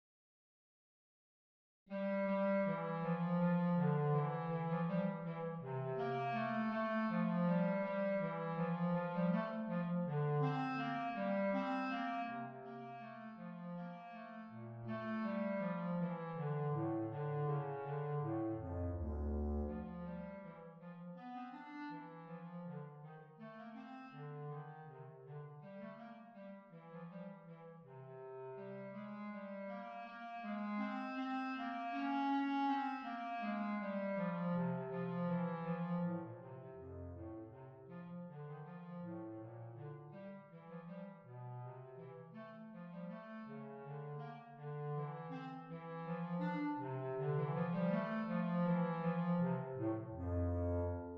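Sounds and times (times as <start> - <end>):
bass clarinet playing slowly: 1.9 - 37.3, 42.0 - 51.1.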